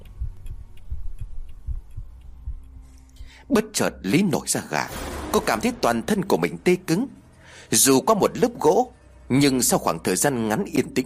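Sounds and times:
heartbeat: 0:00.0 - 0:03.8
speech: 0:03.4 - 0:11.0.

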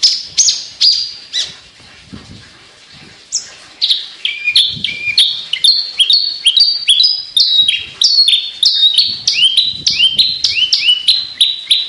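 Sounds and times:
Javan bush lark song of clear whistled notes: 0:04.3 - 0:11.8.

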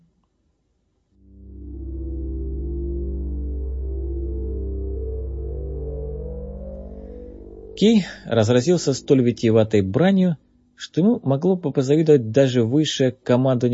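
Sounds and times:
spaceship engines throbbing hum as the ship begins flying in the atmosphere: 0:01.2 - 0:10.8
speech: 0:07.8 - 0:13.7.

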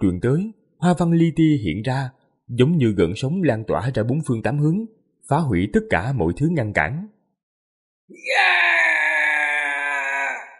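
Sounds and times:
speech: 0:00.0 - 0:07.2, 0:08.1 - 0:08.8
anguished human wail of pain: 0:08.1 - 0:10.5.

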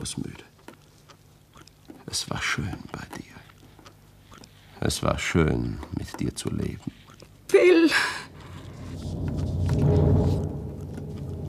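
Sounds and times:
speech: 0:00.0 - 0:00.5, 0:02.1 - 0:03.3, 0:04.8 - 0:08.3
thunder rumbling as a storm approaches: 0:08.2 - 0:11.4.

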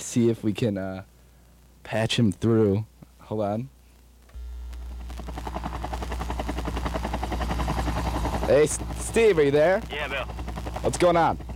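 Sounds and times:
speech: 0:00.1 - 0:01.1, 0:01.9 - 0:03.8, 0:08.5 - 0:11.5
helicopter low engine drone: 0:04.3 - 0:11.5
helicopter in flight with rotor blades chopping: 0:04.4 - 0:11.5.

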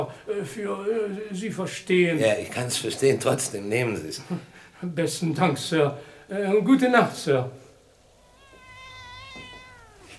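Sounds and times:
speech: 0:00.1 - 0:07.6
young cat meowing: 0:08.2 - 0:10.1.

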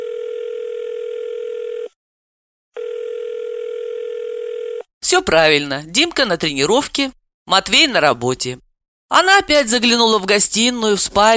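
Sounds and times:
telephone ringback tone of an unanswered call: 0:00.0 - 0:02.0, 0:02.8 - 0:04.9
speech: 0:05.1 - 0:11.3.

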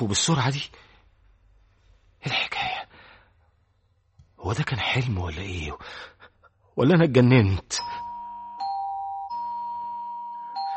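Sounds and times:
speech: 0:00.0 - 0:00.9, 0:02.2 - 0:02.6, 0:04.4 - 0:06.1, 0:06.8 - 0:08.0
doorbell ringing with electronic chime tones: 0:07.8 - 0:10.7.

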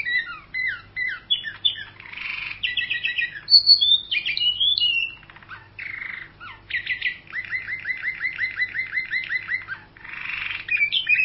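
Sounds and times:
canary song with high whistles, buzzy rattles and trills: 0:00.0 - 0:11.2.

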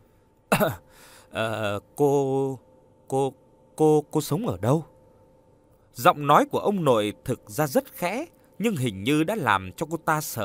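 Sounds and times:
man giving dry coughs at a dinner table: 0:00.5 - 0:01.6
speech: 0:00.5 - 0:04.9, 0:06.0 - 0:10.4.

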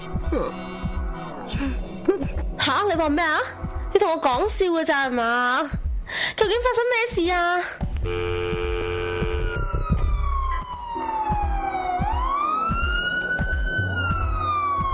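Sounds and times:
speech: 0:00.3 - 0:00.8, 0:01.5 - 0:08.6
ambulance and police car sirens wailing near an apartment building: 0:08.1 - 0:14.9.

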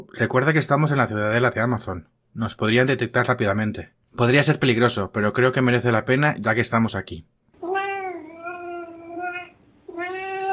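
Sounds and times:
speech: 0:00.0 - 0:07.3
cat meowing: 0:07.6 - 0:10.5.

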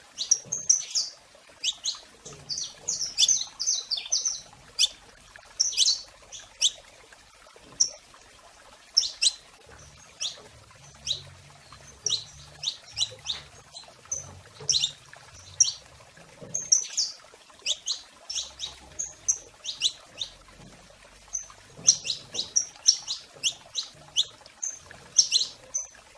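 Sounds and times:
domestic canary singing: 0:00.2 - 0:05.0, 0:05.6 - 0:06.8, 0:09.0 - 0:09.4, 0:10.1 - 0:15.8, 0:16.6 - 0:20.4, 0:21.3 - 0:25.9.

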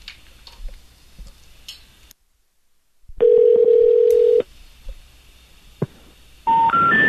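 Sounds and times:
ringback tone of an outgoing telephone call: 0:03.2 - 0:04.4, 0:06.5 - 0:07.0.

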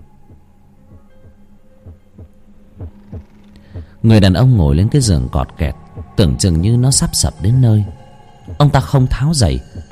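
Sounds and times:
low pounding heartbeat: 0:00.0 - 0:04.0, 0:05.7 - 0:06.6, 0:07.2 - 0:08.9, 0:09.6 - 0:09.9
soft hum: 0:00.0 - 0:09.9
speech: 0:04.0 - 0:08.0, 0:08.6 - 0:09.8.

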